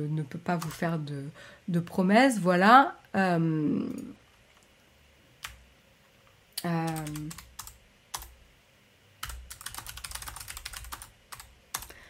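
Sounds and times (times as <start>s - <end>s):
speech: 0.0s - 4.2s, 6.6s - 7.5s
typing on a computer keyboard: 0.6s - 0.8s, 6.6s - 8.4s, 9.2s - 12.0s.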